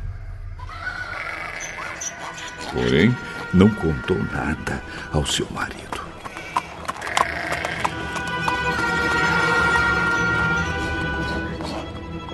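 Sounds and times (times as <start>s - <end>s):
long drawn-out animal call: 0.7s - 12.0s
speech: 2.6s - 6.0s
hooves of a ridden donkey clip-clopping going downhill: 5.1s - 12.3s.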